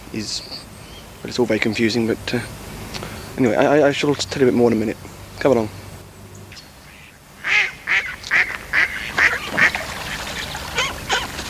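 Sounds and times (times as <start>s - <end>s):
speech: 0.1s - 5.8s
duck quacking: 6.9s - 11.4s.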